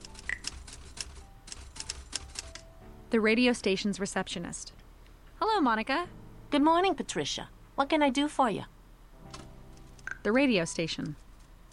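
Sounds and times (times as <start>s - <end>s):
typewriter keys clacking: 0.0s - 2.6s
low hum: 0.0s - 11.7s
speech: 3.1s - 4.8s, 5.6s - 8.7s, 10.2s - 11.2s.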